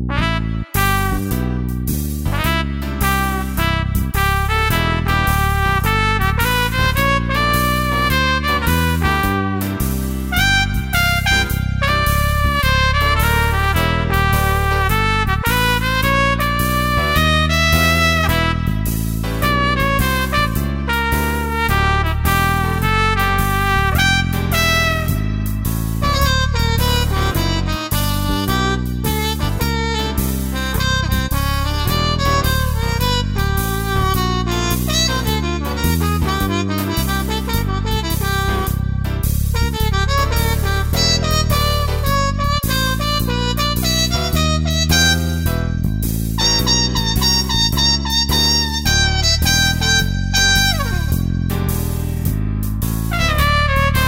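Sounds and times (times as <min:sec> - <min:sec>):
trumpet playing blues: 0:00.1 - 0:54.0.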